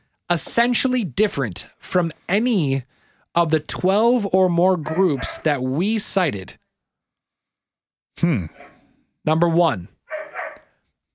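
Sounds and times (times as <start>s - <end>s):
speech: 0.3s - 6.6s, 8.2s - 9.9s
dog barking: 4.9s - 5.5s, 8.5s - 8.8s, 10.1s - 10.8s.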